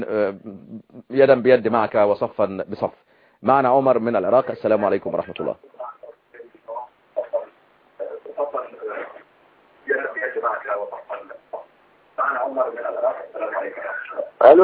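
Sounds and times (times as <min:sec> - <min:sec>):
speech: 0:00.0 - 0:05.7, 0:12.3 - 0:14.6
television playing in the background with voices: 0:03.9 - 0:14.6
tinny narrow-band telephone audio from a caller in Iraq: 0:05.6 - 0:14.6.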